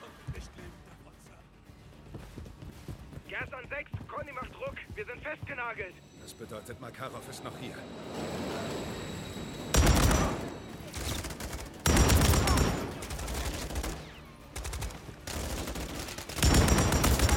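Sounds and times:
speech: 0:03.3 - 0:08.8
heavy automatic video game gunfire during a firefight near a bomb: 0:11.0 - 0:17.3.

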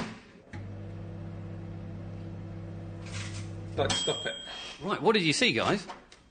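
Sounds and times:
microwave oven running with crisp packet inside, electrical hum: 0:00.4 - 0:03.9
speech: 0:03.8 - 0:06.2.

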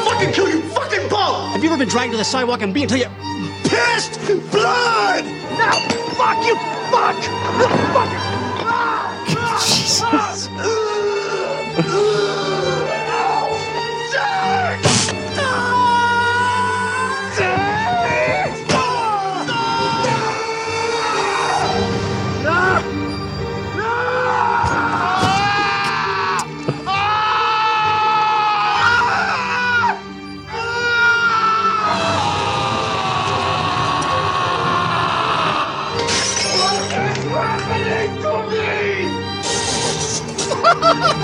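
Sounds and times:
laughter: 0:00.0 - 0:23.8, 0:36.8 - 0:41.2
speech: 0:00.2 - 0:08.5, 0:09.3 - 0:12.8
man screaming in a movie scene: 0:08.5 - 0:14.8, 0:15.4 - 0:21.8, 0:23.8 - 0:36.0.

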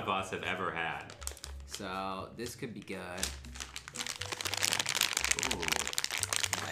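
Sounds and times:
speech: 0:00.1 - 0:01.2, 0:01.8 - 0:03.6, 0:05.3 - 0:06.0
crinkling of a bag of coconut peanut chocolate candy: 0:00.9 - 0:06.7.

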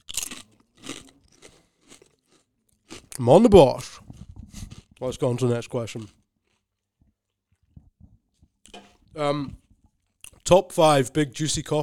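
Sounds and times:
crunching a crunchy snack: 0:00.0 - 0:07.7
speech: 0:03.2 - 0:03.9, 0:05.0 - 0:06.2, 0:09.2 - 0:09.6, 0:10.5 - 0:11.8.

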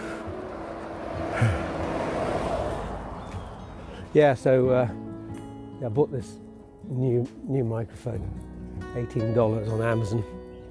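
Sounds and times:
car passing by: 0:00.0 - 0:04.5
speech: 0:04.1 - 0:05.0, 0:05.8 - 0:10.4.

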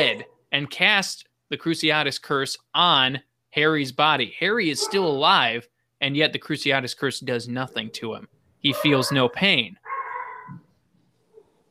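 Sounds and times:
speech: 0:00.0 - 0:09.8
dog barking: 0:04.8 - 0:05.2, 0:08.6 - 0:10.6.

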